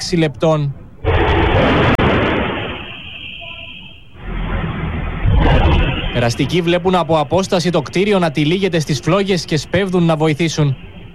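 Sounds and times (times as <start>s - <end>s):
speech: 0.1s - 0.8s, 1.6s - 2.0s, 6.2s - 10.9s
explosion on apartment building ground floor: 1.0s - 3.4s, 4.2s - 6.9s.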